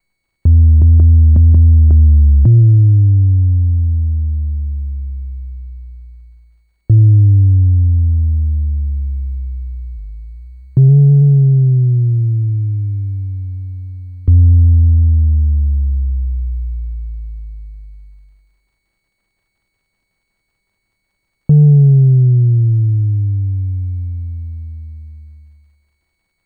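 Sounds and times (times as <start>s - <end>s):
jungle sub bass: 0.5s - 18.4s, 21.5s - 25.6s.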